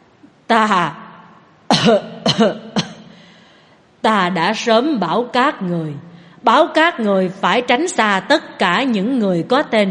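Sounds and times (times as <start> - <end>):
speech: 0.5 - 1.0, 1.8 - 2.7, 4.0 - 9.8
hoarse raspy voice coughing violently: 1.7 - 3.2.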